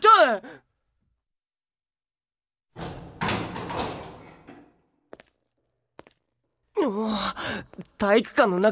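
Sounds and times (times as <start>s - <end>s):
gymnasium door swinging open with scraping rattling rush: 2.8s - 4.8s
speech: 6.9s - 8.7s.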